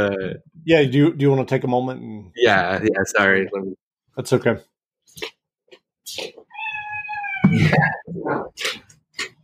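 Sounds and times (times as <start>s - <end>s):
speech: 0.0s - 5.4s, 6.1s - 6.4s, 7.5s - 8.8s
cat meowing and yowling: 6.4s - 8.0s.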